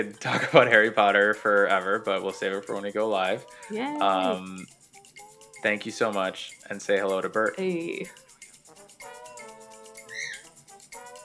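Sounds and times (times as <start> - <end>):
laughter: 0.0 - 4.6
speech: 0.0 - 4.8, 5.6 - 8.2
pet bird squawking: 10.0 - 10.5.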